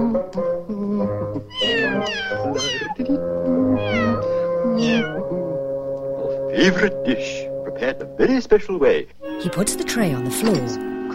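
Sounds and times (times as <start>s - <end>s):
low musical backing: 0.0s - 11.1s
several kittens meowing: 1.5s - 3.0s, 3.7s - 5.4s
speech: 6.6s - 10.9s.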